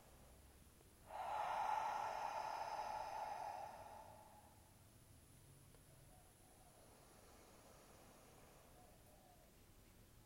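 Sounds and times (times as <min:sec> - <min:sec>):
long deep breath drawn down to the belly: 0:01.0 - 0:04.8, 0:06.4 - 0:09.4.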